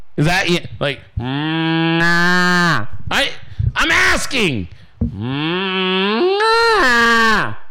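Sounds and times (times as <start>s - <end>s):
speech: 0.2s - 6.0s
person imitating a cow's moo: 1.2s - 2.8s, 5.1s - 7.6s.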